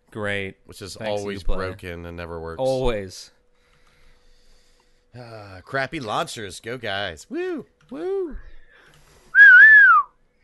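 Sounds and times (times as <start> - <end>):
speech: 0.1 - 3.4, 5.2 - 8.5
person whistling: 9.4 - 10.1.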